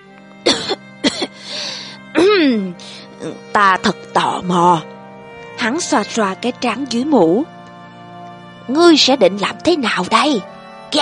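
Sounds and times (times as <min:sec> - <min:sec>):
man coughing: 0:00.5 - 0:01.4
speech: 0:03.2 - 0:04.9, 0:05.6 - 0:07.6, 0:08.7 - 0:10.9.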